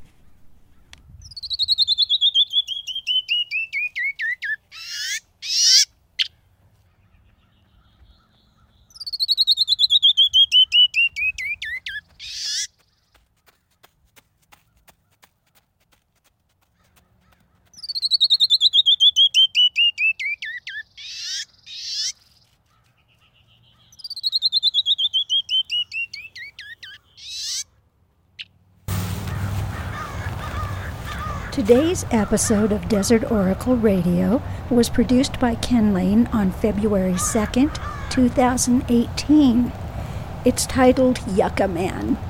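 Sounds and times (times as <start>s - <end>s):
canyon wren singing: 0.8s - 6.4s, 7.0s - 12.6s, 17.8s - 22.3s, 23.4s - 27.7s, 29.9s - 42.2s
speech: 31.6s - 39.8s, 40.4s - 42.2s.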